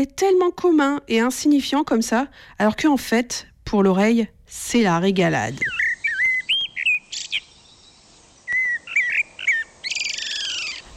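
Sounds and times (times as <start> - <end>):
speech: 0.0 - 5.8
Eurasian blackbird singing: 5.5 - 10.9.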